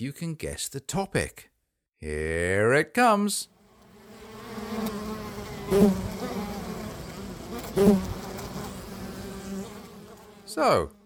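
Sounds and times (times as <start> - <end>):
speech: 0.0 - 3.6, 5.7 - 6.2, 7.8 - 8.2, 10.5 - 11.0
bees buzzing with a droning hum: 3.6 - 10.8.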